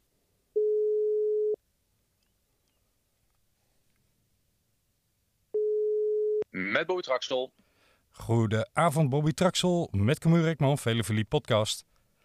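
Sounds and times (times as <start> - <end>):
single-pitched telephone ringback tone while calling: 0.6 - 1.6, 5.6 - 6.4
speech: 6.8 - 7.6, 8.2 - 11.9.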